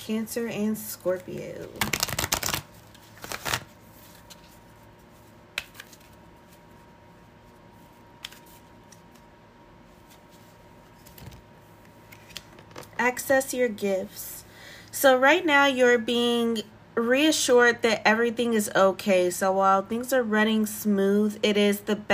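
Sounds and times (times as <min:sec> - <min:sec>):
speech: 0:00.0 - 0:02.2, 0:13.1 - 0:14.4, 0:15.0 - 0:22.1
unicorn-themed deck of cards riffle shuffling: 0:01.6 - 0:06.8, 0:07.8 - 0:09.3
cards from a unicorn-themed deck snapping and sliding: 0:01.8 - 0:04.4, 0:05.5 - 0:06.2, 0:08.2 - 0:09.3.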